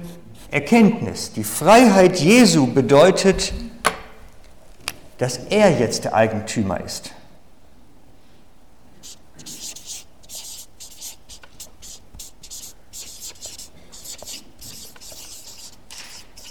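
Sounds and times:
speech: 0.5s - 3.8s, 5.2s - 7.2s
pen writing a word by hand on a board: 9.0s - 16.4s.

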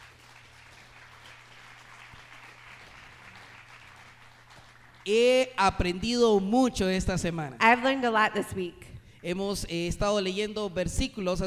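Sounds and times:
congregation applauding: 0.0s - 5.2s
low electrical hum: 0.0s - 11.4s
speech: 5.0s - 11.4s.

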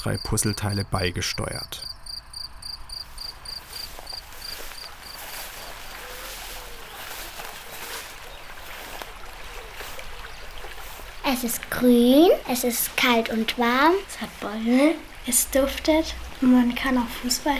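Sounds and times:
speech: 0.0s - 1.9s, 11.3s - 17.5s
cricket chirping outdoors in sunny weather: 0.0s - 6.2s
rushing stream-like noise: 3.6s - 17.5s.

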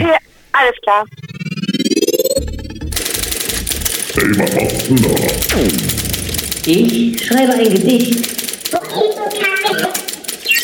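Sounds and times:
speech: 0.6s - 1.2s, 4.2s - 6.0s, 6.6s - 10.0s
podcast jingle of layered synthetic tones and typewriter-like effects: 1.1s - 7.2s.

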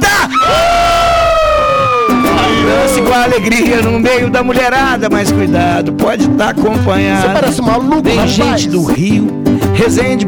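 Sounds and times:
person screaming loudly from the throat: 0.0s - 4.4s
speech: 3.1s - 10.2s.

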